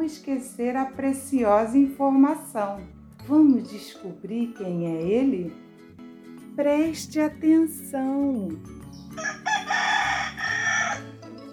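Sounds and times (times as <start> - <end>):
speech: 0.0 - 5.6, 6.6 - 9.3
rooster crowing: 9.2 - 11.4.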